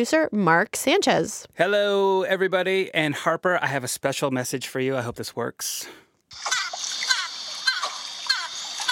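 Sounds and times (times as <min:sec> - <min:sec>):
speech: 0:00.0 - 0:06.6
steady watery hiss: 0:06.3 - 0:08.8
dolphin squeaky chirping whistles: 0:06.4 - 0:08.8.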